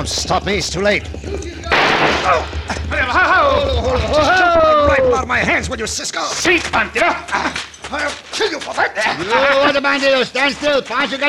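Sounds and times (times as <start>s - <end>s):
speech: 0.0s - 11.2s
single loud gunshot: 1.7s - 2.8s
agitated shouting voices: 2.0s - 5.5s, 6.7s - 10.0s
laughter: 2.3s - 11.2s.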